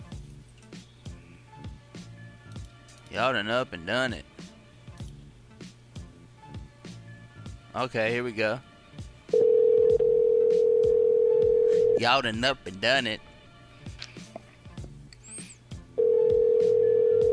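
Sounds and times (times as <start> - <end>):
speech: 3.1 - 4.4, 7.8 - 8.7, 12.0 - 13.3
outgoing phone call ringback tone: 9.3 - 12.1, 16.0 - 17.3.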